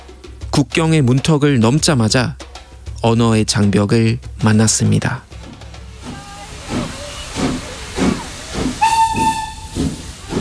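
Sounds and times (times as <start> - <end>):
steam train chugging: 0.0 - 10.3
speech: 0.6 - 2.4, 3.0 - 5.3
shrill steam train whistle: 6.0 - 10.3.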